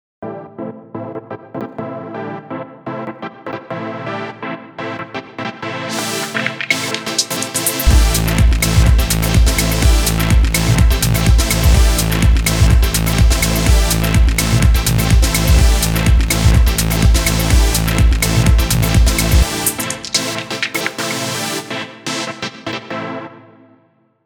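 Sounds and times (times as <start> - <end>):
supersaw synthesizer: 5.2 - 23.6.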